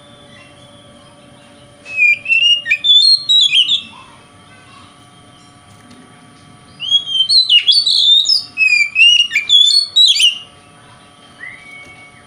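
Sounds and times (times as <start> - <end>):
Oriental magpie-robin singing varied whistles and chips in the konslet song style: 0.2 - 4.0, 6.7 - 10.5.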